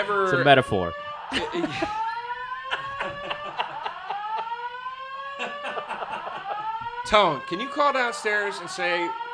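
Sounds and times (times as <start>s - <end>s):
speech: 0.0s - 2.1s, 7.1s - 9.2s
fire alarm wailing in rising and falling electronic sweeps during a test: 0.0s - 9.3s
people laughing: 1.3s - 7.0s.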